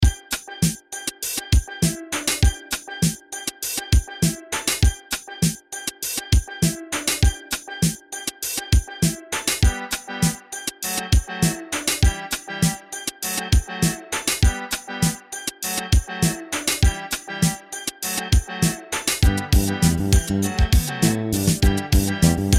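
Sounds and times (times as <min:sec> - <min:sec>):
Latin music at 100 BPM: 0:00.0 - 0:22.5.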